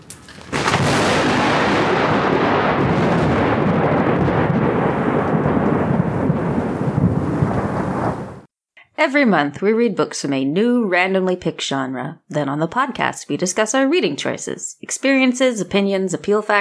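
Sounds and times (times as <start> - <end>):
thunder crack and rumbling roar sound effect: 0.0 - 8.5
speech: 9.0 - 16.5.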